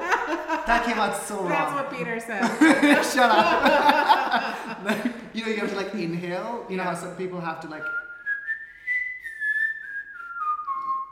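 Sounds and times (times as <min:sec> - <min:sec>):
laughter: 0:00.0 - 0:01.8, 0:02.4 - 0:06.1
speech: 0:00.7 - 0:08.0
person whistling one steady clear tone: 0:07.8 - 0:11.0.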